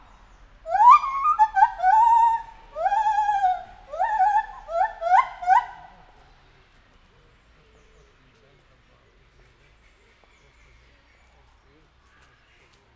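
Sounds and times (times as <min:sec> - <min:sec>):
captive white-handed gibbon hooting in a zoo: 0:00.7 - 0:06.0.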